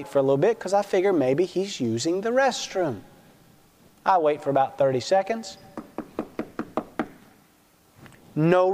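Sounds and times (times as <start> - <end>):
speech: 0.0 - 3.1, 4.0 - 5.6, 8.4 - 8.7
firm knocking on a door: 5.8 - 7.2.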